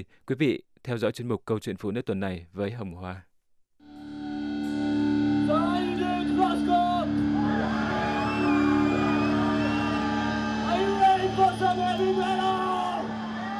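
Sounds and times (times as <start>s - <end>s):
speech: 0.0s - 3.3s
thick droning distorted guitar: 3.8s - 13.5s
loud heavy metal music: 4.0s - 13.5s
harsh screamed vocals: 7.4s - 13.5s.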